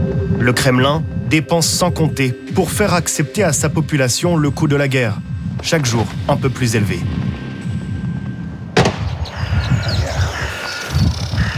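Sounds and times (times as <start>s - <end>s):
low wind rumble: 0.0s - 11.5s
speech: 0.4s - 7.3s
rifle shot fired in a ceremonial salute outdoors: 8.8s - 9.2s
crow calls: 8.8s - 11.5s.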